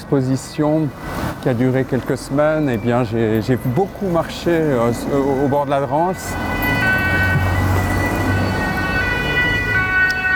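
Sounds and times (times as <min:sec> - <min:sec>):
low traffic rumble: 0:00.0 - 0:10.3
speech: 0:00.1 - 0:06.7
ambulance siren passing along the banks of the Drance river: 0:02.2 - 0:10.3.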